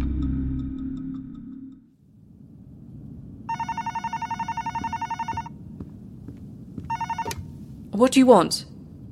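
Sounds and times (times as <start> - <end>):
low rumble: 0.4 - 9.1
hotel room telephone ringing: 3.5 - 5.5, 6.8 - 7.4
speech: 8.0 - 8.7.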